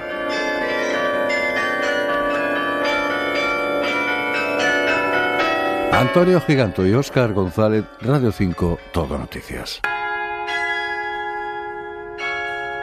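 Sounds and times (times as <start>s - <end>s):
carillon bells struck by hammers playing a simple melody: 0.0s - 12.8s
speech: 6.0s - 9.9s.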